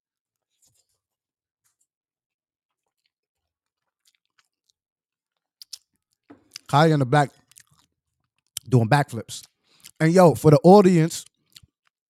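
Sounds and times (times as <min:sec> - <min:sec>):
chewing and mouth noises while eating spaghetti: 0:02.7 - 0:06.7, 0:07.3 - 0:08.7, 0:09.4 - 0:10.0, 0:11.2 - 0:12.0
speech: 0:06.7 - 0:07.4, 0:08.7 - 0:11.3.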